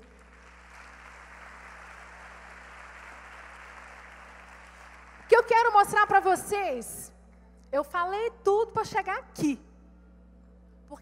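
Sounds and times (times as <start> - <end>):
crowd clapping in a large room: 0.0 - 6.2
speech: 5.5 - 7.1, 7.7 - 9.7.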